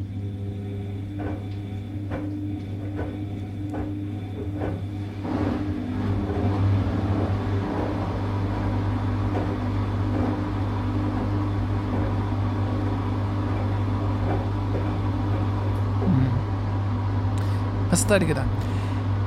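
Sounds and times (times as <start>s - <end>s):
washing machine running with a steady loud low drone: 0.0s - 19.2s
soft rhythmic knocks from a washing machine: 1.0s - 5.6s
speech: 18.1s - 18.8s.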